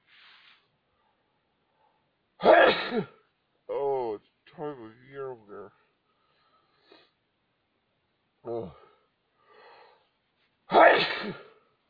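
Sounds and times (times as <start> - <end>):
single loud sneeze with voiced ah intake: 2.4 - 3.2, 10.7 - 11.6
speech: 2.9 - 3.2.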